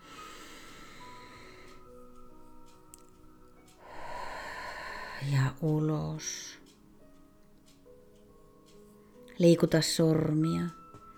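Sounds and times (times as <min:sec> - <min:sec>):
deep breath in during a guided relaxation exercise: 0:00.0 - 0:01.9, 0:03.8 - 0:05.3
speech: 0:05.2 - 0:06.6, 0:09.4 - 0:10.8.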